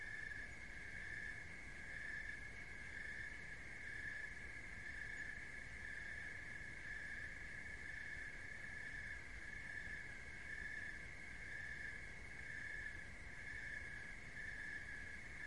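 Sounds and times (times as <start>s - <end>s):
cricket trilling: 0.0s - 15.4s
low background noise: 0.0s - 15.4s.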